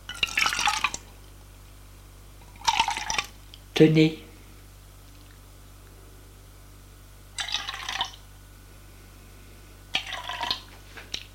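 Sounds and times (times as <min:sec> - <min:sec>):
drink poured from a freshly opened bottle: 0:02.4 - 0:03.4, 0:07.4 - 0:08.2, 0:10.0 - 0:10.7
speech: 0:03.8 - 0:04.2.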